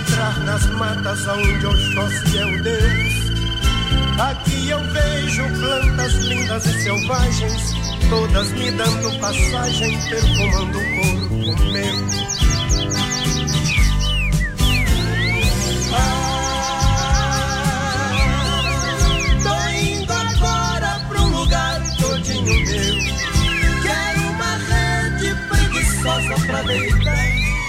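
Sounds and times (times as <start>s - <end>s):
full musical backing with bass and sustained tones: 0.0s - 27.6s
sparrows chirping: 0.0s - 27.6s
speech: 0.3s - 3.4s, 4.2s - 12.4s.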